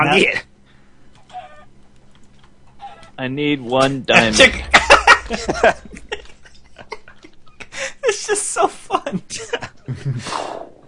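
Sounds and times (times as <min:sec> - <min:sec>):
speech: 0:00.0 - 0:00.5, 0:03.2 - 0:06.0, 0:08.2 - 0:10.7
low steady hum: 0:00.0 - 0:10.2
video game chicken clucking: 0:01.2 - 0:01.9, 0:02.5 - 0:03.2
laughter: 0:04.5 - 0:08.1.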